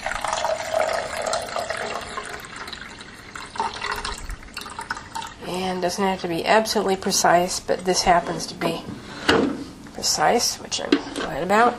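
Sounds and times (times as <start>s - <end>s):
filtered water pouring into a 2-cup measuring cup: 0.0s - 5.5s
speech: 5.8s - 8.9s, 10.0s - 11.7s.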